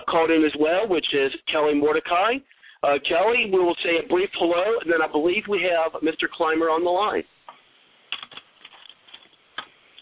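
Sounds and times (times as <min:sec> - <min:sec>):
speech: 0:00.1 - 0:07.4
typing on a computer keyboard: 0:08.1 - 0:09.2.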